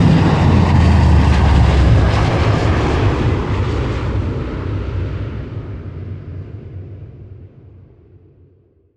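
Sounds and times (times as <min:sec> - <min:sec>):
aircraft vertical takeoff: 0:00.0 - 0:08.3.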